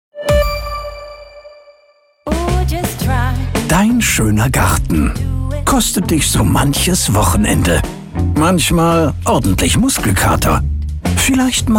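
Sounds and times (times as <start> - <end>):
bright doorbell chime: 0.2 - 2.2
speech: 2.7 - 11.7.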